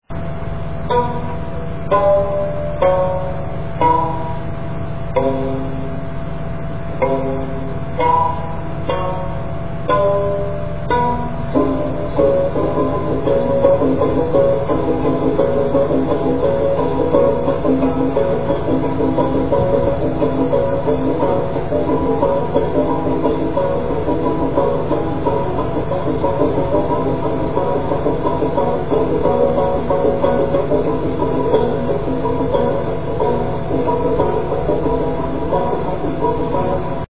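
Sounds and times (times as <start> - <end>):
pluriarc playing: 0.0 - 37.1.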